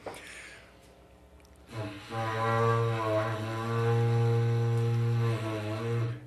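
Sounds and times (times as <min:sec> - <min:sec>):
berrante cattle horn blast: 0:01.7 - 0:06.2.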